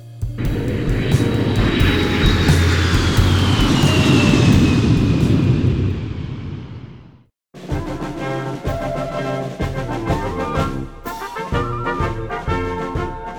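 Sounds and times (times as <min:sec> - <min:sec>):
music: 0:00.0 - 0:05.6, 0:07.6 - 0:13.3
jet airliner flying to Brisbane roaring: 0:00.4 - 0:07.2.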